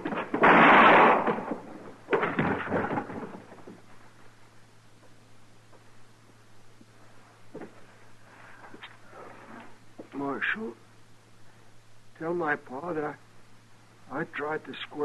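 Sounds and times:
quiet low hum: 0.0 - 15.0
gunshots in a Western showdown: 0.3 - 1.6
speech: 12.4 - 13.2, 14.1 - 15.0.

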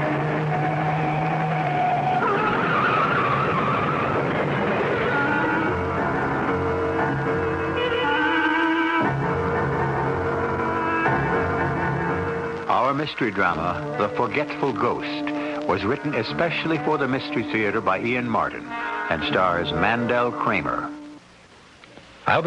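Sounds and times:
loud continuous car engine roar: 0.0 - 12.7
car tires screeching and skidding as car swerves off road: 0.0 - 17.9
speech: 13.0 - 21.0, 22.3 - 22.4.

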